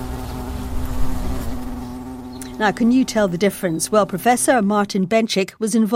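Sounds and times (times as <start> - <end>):
Asian hornets hovering in flight: 0.0 - 4.8
speech: 2.6 - 5.9.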